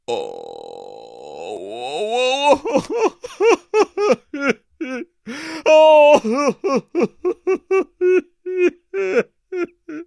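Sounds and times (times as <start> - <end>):
man crying: 0.1 - 10.0.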